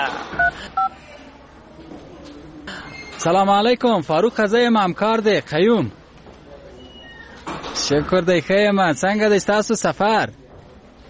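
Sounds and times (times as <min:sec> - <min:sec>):
telephone keypad dual-tone beeps dialing a call: 0:00.4 - 0:01.0
speech: 0:03.2 - 0:06.0, 0:07.9 - 0:10.4.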